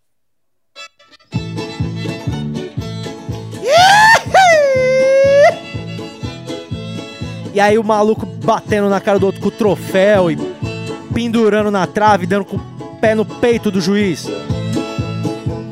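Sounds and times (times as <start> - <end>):
bluegrass band playing an upbeat tune with strummed rhythm: 1.3 - 3.6, 4.8 - 15.7
loud swooping wailing slide: 3.6 - 5.6
speech: 7.6 - 10.6, 11.2 - 14.5.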